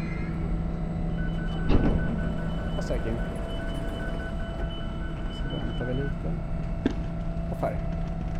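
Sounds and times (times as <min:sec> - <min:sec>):
stationary train idling with low hum and electrical whine: 0:00.0 - 0:08.3
speech: 0:02.9 - 0:03.4, 0:05.5 - 0:06.7, 0:07.6 - 0:08.0.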